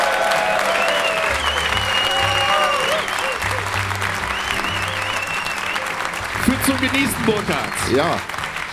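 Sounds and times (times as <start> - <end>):
audience cheers and whoops: 0.0 - 5.9
large live audience applauding: 0.0 - 8.7
speech: 6.8 - 8.4.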